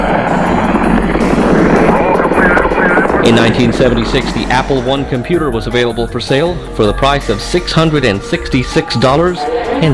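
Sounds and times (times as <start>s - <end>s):
Saturn V rocket liftoff roar: 0.0s - 6.0s
speech: 3.2s - 9.9s.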